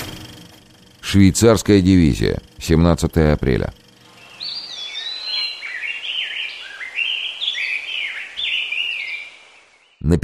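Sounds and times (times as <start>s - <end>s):
speech: 1.1s - 3.8s
birds chirping and singing over trenches at a front line: 2.4s - 10.0s.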